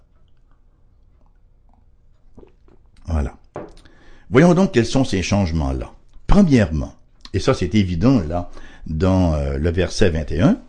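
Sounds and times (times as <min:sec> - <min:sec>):
person sipping water and swallowing: 0:00.0 - 0:04.2
low hum: 0:00.0 - 0:10.6
speech: 0:04.3 - 0:10.6.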